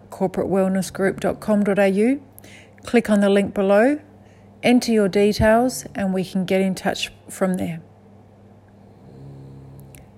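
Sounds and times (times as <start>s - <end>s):
speech: 0.2s - 7.9s
dog snoring: 8.8s - 10.1s.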